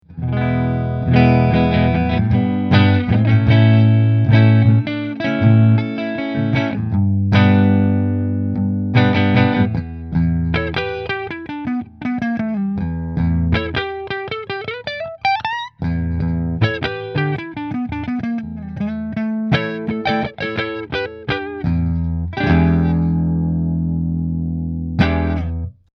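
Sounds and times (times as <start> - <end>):
electric guitar with burny neck: 0.0 - 25.9.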